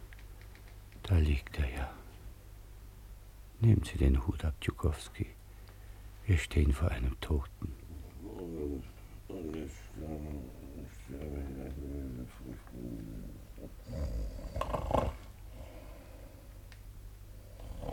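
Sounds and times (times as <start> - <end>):
speech: 1.1 - 2.0, 3.6 - 5.4, 6.3 - 7.8, 8.8 - 15.2
man snoring with deep rasping breaths: 10.0 - 15.9, 17.4 - 17.9.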